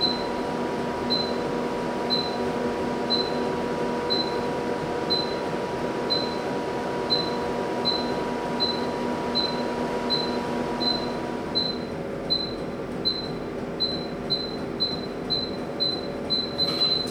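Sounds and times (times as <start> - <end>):
laser hair removal equipment: 0.1 - 4.5, 5.1 - 17.0.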